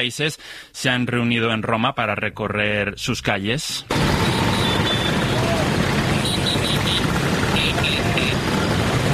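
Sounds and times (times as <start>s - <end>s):
speech: 0.0s - 4.4s
many Vespa motor scooters riding through streets: 3.9s - 9.1s
short bright scooter horn toots: 4.2s - 8.6s.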